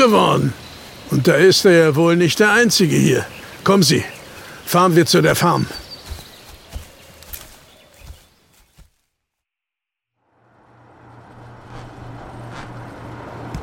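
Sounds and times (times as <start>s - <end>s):
speech: 0.0s - 5.8s
road noise: 0.0s - 8.9s, 10.2s - 13.6s
hoof clops: 5.6s - 9.0s
small car engine humming as it drives up: 10.3s - 13.6s.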